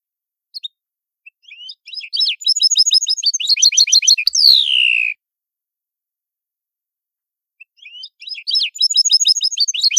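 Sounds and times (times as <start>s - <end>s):
European goldfinch song in Neapolitan song style: 0.5s - 5.2s, 7.6s - 9.9s.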